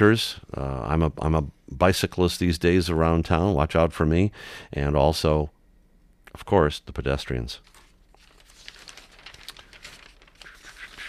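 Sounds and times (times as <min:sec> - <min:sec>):
speech: 0:00.0 - 0:05.6, 0:06.3 - 0:07.7
paper pages turning with rustling and crinkling: 0:07.6 - 0:11.0.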